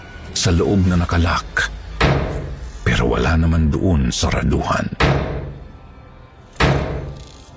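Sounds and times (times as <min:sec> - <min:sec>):
speech: 0:00.3 - 0:01.8, 0:03.0 - 0:05.2
heavy booming thuds against a door: 0:02.0 - 0:02.6, 0:05.0 - 0:05.7, 0:06.6 - 0:07.2.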